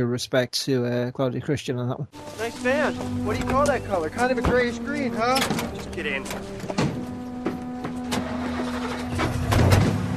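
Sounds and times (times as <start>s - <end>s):
speech: 0.0s - 6.9s
sharp mechanical clunks: 4.4s - 10.1s
greyish-green truck engine cranking and starting: 4.7s - 10.1s.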